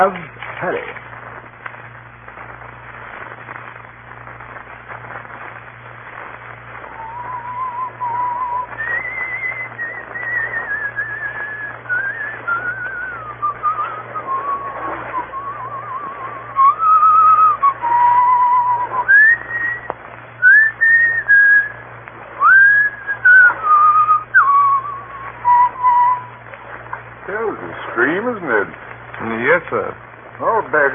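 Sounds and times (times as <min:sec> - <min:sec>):
speech: 0:00.0 - 0:01.0
faint steady hum: 0:00.0 - 0:30.9
man whistling a slow lilting folk melody: 0:06.9 - 0:21.7, 0:22.4 - 0:26.3.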